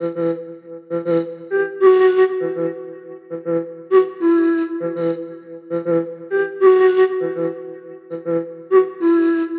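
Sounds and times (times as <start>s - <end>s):
flute loop in E minor: 1.5s - 3.3s, 3.9s - 5.7s, 6.3s - 9.5s.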